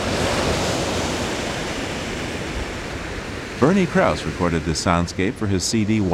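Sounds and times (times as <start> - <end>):
large waves after glacier ice calving: 0.0 - 6.1
speech: 3.6 - 6.1.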